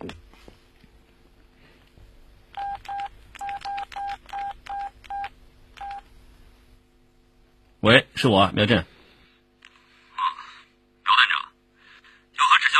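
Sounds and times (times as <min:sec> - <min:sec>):
telephone keypad tones of two-note beeps while dialing a phone call: 0:02.6 - 0:06.0
speech: 0:07.8 - 0:08.9.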